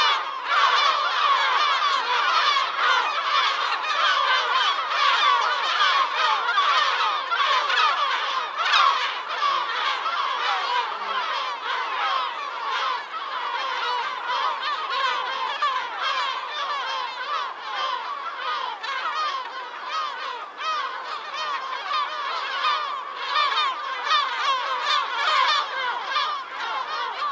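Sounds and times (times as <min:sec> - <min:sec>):
bird flock honking and chattering: 0:00.0 - 0:27.3.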